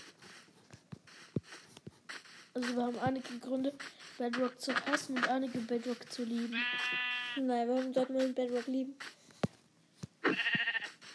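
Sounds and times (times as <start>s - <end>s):
speech: 2.6s - 9.1s
sheep bleating in a video game: 6.5s - 7.4s, 10.2s - 11.0s.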